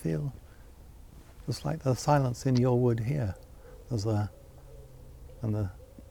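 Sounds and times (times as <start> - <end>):
speech: 0.0 - 0.4, 1.5 - 4.4, 5.4 - 5.8
pigeons cooing: 2.9 - 6.1.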